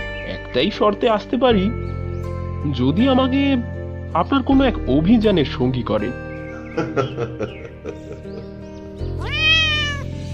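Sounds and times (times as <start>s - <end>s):
speech: 0.5s - 1.9s, 2.6s - 6.2s, 6.8s - 8.3s
laughter: 6.6s - 8.6s
soft cat meowing in a living room: 9.2s - 10.2s.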